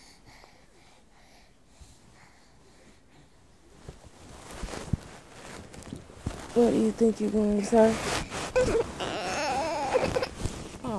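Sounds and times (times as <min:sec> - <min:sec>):
speech: 0:06.6 - 0:08.8
baby fussing and crying: 0:08.4 - 0:10.5.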